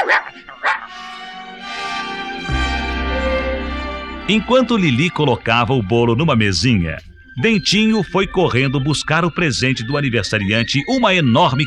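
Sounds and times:
small mongrel dog barking in high-pitched yips: 0:00.0 - 0:01.0
sustained musical backing: 0:00.5 - 0:11.6
speech: 0:04.3 - 0:11.6.

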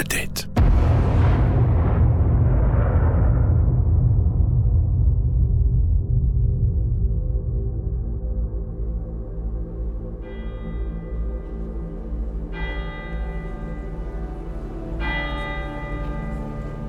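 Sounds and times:
steady low rumble: 0:00.6 - 0:10.2
church bells ringing for a funeral: 0:09.8 - 0:16.8.

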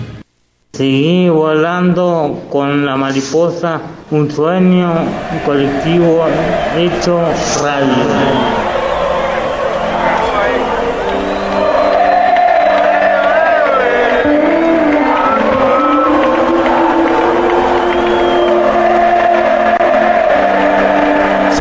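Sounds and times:
speech: 0:00.7 - 0:08.6
stadium concert crowd shouting and cheering in Argentina: 0:04.4 - 0:21.6.

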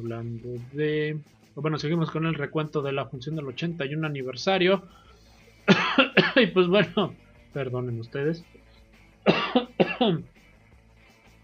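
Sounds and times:
speech: 0:00.0 - 0:05.1, 0:05.7 - 0:08.6, 0:09.2 - 0:10.4
person coughing: 0:05.7 - 0:06.6, 0:09.3 - 0:10.3.

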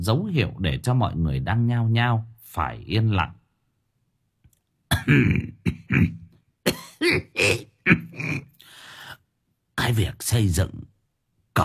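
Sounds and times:
speech: 0:00.0 - 0:03.4, 0:05.0 - 0:06.2, 0:07.0 - 0:08.5, 0:09.8 - 0:10.9
elderly man coughing with harsh throaty hacking: 0:04.9 - 0:08.5.

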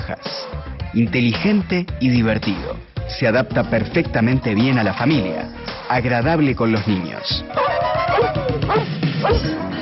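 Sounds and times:
speech: 0:00.1 - 0:09.6
dog barking: 0:07.6 - 0:09.6.

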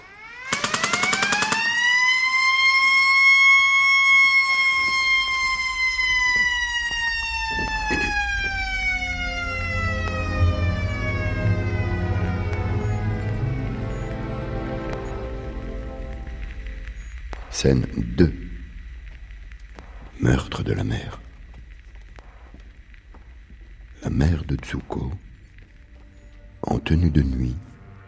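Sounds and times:
siren wailing after a prison escape: 0:00.0 - 0:17.6
sharp cracks: 0:00.4 - 0:13.2, 0:14.8 - 0:24.0
speech: 0:17.6 - 0:18.4, 0:20.7 - 0:21.2, 0:24.2 - 0:25.3, 0:26.9 - 0:27.7.

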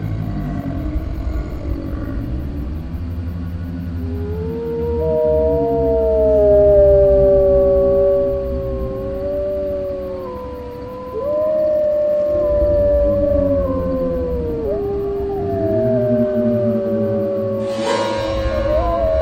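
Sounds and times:
low rumbling bed: 0:00.0 - 0:19.2
werewolf howling: 0:00.0 - 0:19.2.

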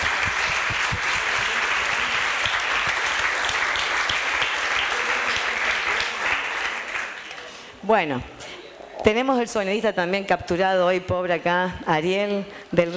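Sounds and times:
crowd applauding at a live event: 0:00.0 - 0:07.8
speech: 0:07.9 - 0:08.4, 0:09.0 - 0:12.9.

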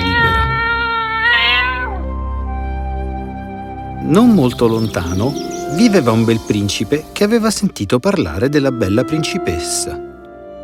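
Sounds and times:
giant cat yowling as its tail is stepped on: 0:00.0 - 0:02.2
speech: 0:04.1 - 0:10.1.

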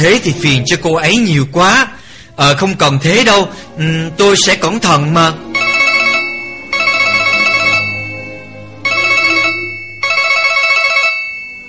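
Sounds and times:
speech: 0:00.0 - 0:05.5
electronic telephone ringtone trilling: 0:05.6 - 0:11.6.

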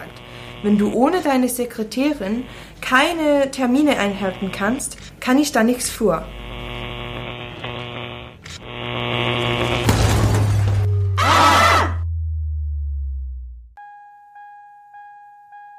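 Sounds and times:
elevator mechanical hum and drone: 0:00.0 - 0:12.2
speech: 0:00.6 - 0:06.4
elevator breaking down with shattering metallic crashes: 0:09.8 - 0:11.0.

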